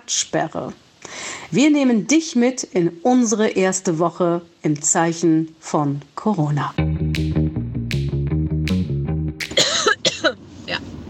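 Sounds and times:
speech: 0.1s - 0.9s, 1.5s - 6.9s
short plucky musical phrase: 6.8s - 9.6s
harsh coughing fit: 9.5s - 10.4s.

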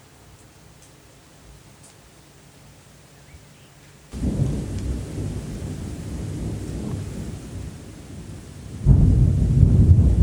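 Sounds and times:
steady heavy rain: 0.0s - 10.2s
deep rolling thunder: 4.1s - 10.2s.

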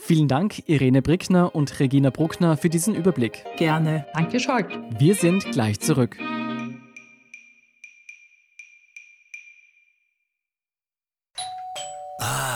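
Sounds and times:
speech: 0.1s - 6.4s
doorbell chimes for a food delivery: 11.4s - 12.3s.

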